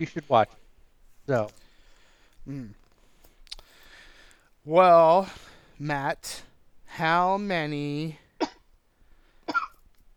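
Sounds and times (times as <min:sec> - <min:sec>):
speech: 0:00.0 - 0:00.6, 0:01.3 - 0:01.6, 0:02.4 - 0:02.8, 0:04.7 - 0:08.2
short harsh coughs: 0:08.4 - 0:08.6, 0:09.5 - 0:09.8.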